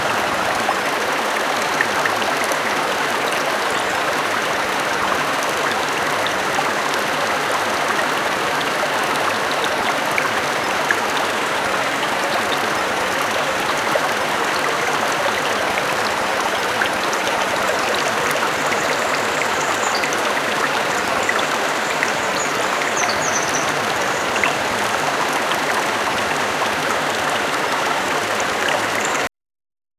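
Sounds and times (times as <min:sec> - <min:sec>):
natural stream flowing: 0:00.0 - 0:29.3
birdsong: 0:17.9 - 0:24.7.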